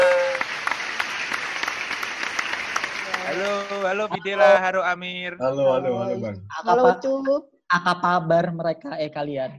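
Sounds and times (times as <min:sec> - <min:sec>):
lively applause from a crowd: 0:00.0 - 0:04.1
speech: 0:03.4 - 0:09.5.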